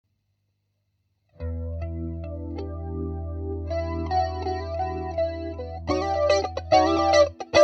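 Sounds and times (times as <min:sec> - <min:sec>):
medium flanger bass: 0:01.4 - 0:07.5.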